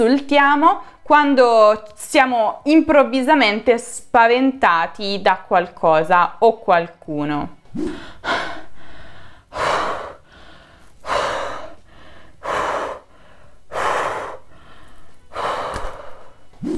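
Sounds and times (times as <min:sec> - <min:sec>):
speech: 0:00.0 - 0:08.5
heavy laboured panting breaths: 0:07.9 - 0:16.4.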